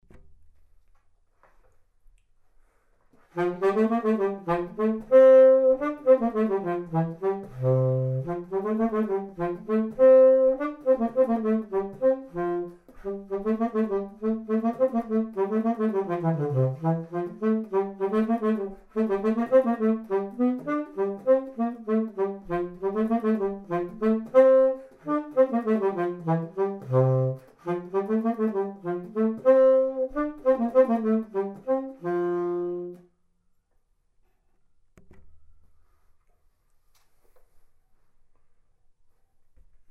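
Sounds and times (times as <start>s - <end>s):
tenor saxophone dance music: 3.1s - 33.1s.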